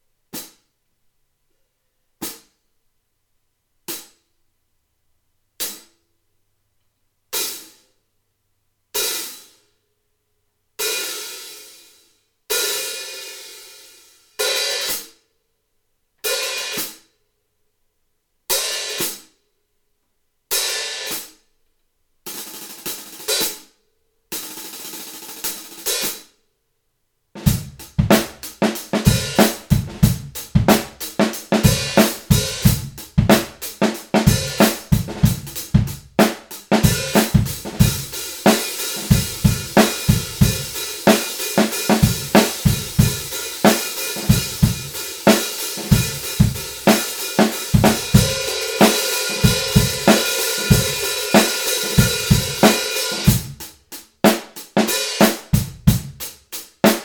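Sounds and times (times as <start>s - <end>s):
hi-hat: 27.6s - 57.0s.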